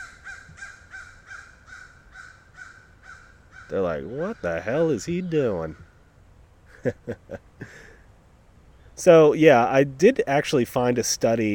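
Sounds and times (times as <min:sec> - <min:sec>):
crows cawing: 0:00.0 - 0:06.2
speech: 0:03.7 - 0:05.9, 0:06.8 - 0:07.9, 0:09.0 - 0:11.5
laughter: 0:06.7 - 0:08.0.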